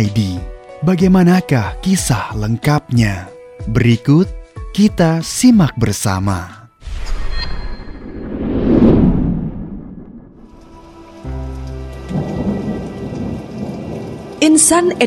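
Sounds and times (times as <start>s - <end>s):
speech: 0.0s - 6.6s, 14.6s - 15.0s
deep low thunder rumbling: 8.0s - 15.0s
steady rain pattering: 10.5s - 15.0s.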